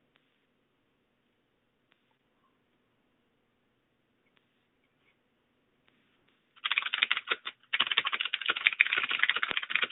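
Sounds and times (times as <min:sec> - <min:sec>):
fast typing on a computer keyboard: 0:06.6 - 0:09.8.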